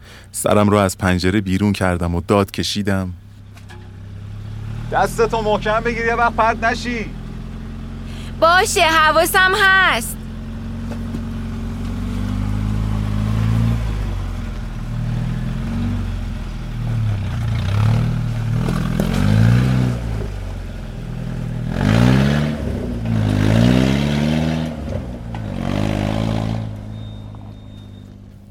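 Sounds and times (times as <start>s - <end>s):
speech: 0.4s - 3.2s, 4.9s - 7.2s, 8.4s - 10.2s
pickup truck engine idling and revving as it pulls away along a side road: 3.2s - 28.4s.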